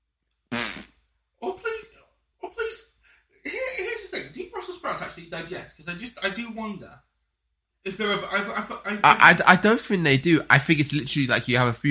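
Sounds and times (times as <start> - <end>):
loud buzzy wet fart: 0.5 - 1.0
speech: 5.2 - 7.1, 7.8 - 11.8.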